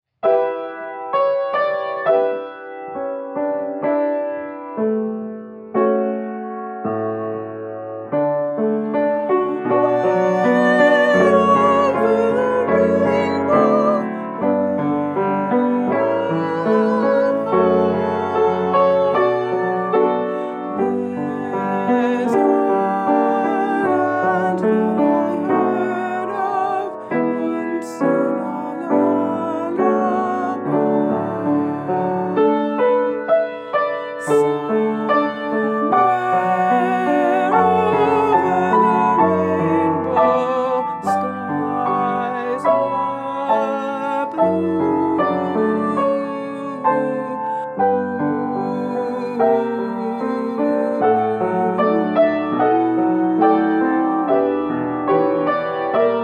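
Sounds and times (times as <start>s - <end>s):
alto piano: 0.0s - 56.2s.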